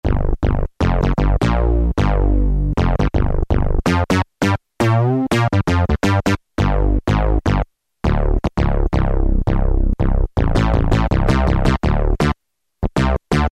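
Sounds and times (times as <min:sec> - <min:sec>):
synth bass on Casio VZ-10M: 0:00.0 - 0:13.5.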